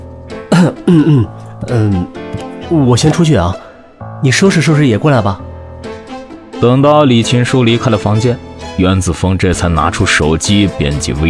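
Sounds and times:
coughs with a hand covering the mouth: 0.5 - 2.1
speech: 0.6 - 3.6, 4.2 - 5.4, 6.6 - 11.2.

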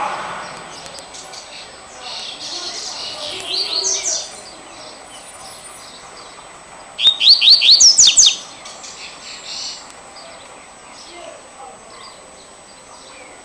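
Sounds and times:
double-collared seedeater singing: 1.1 - 5.9, 7.0 - 9.8.

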